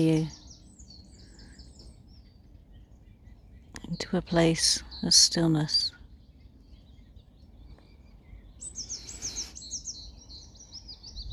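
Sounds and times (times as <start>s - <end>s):
speech: 0.0s - 0.4s, 3.9s - 6.0s
birds chirping and warbling: 0.0s - 11.3s.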